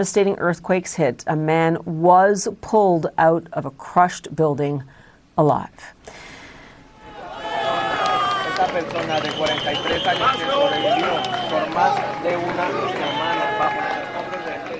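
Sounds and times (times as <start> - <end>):
speech: 0.0 - 6.2, 8.8 - 13.9
crowd cheering at a rescue: 6.9 - 14.7
crowd clapping at a rescue: 7.1 - 14.7.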